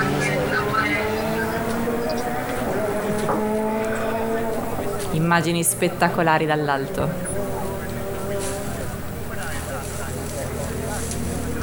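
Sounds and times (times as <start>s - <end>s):
engine droning with a low harmonic hum: 0.0s - 11.6s
faint wash of noise: 0.0s - 11.6s
laughter: 0.0s - 11.6s
speech: 5.3s - 7.3s.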